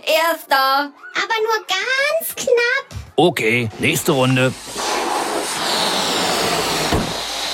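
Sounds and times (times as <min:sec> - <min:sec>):
speech: 0:00.0 - 0:04.8
air rushing out of a released balloon: 0:03.8 - 0:07.5
low thump: 0:06.9 - 0:07.2.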